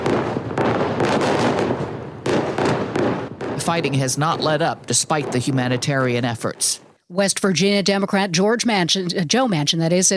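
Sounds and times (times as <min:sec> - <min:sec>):
heavy explosions after dark: 0:00.0 - 0:06.9
speech: 0:03.7 - 0:10.1.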